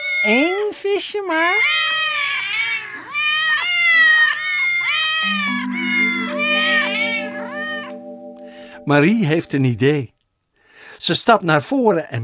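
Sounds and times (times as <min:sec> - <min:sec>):
speech: 0:00.2 - 0:01.8, 0:08.9 - 0:10.2, 0:11.0 - 0:12.2
several cats meowing: 0:01.6 - 0:05.2
steady low tone: 0:05.3 - 0:09.7.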